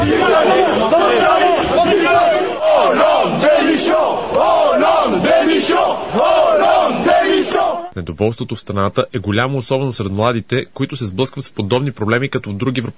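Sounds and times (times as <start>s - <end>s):
crowd of protesters chanting slogans: 0.0s - 7.9s
speech: 8.0s - 12.9s.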